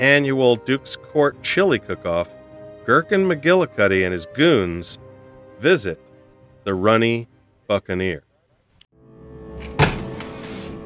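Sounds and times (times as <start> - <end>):
speech: 0.0 - 5.0, 5.6 - 6.0, 6.6 - 8.3
heavy front entrance door banging open with force: 9.5 - 10.8.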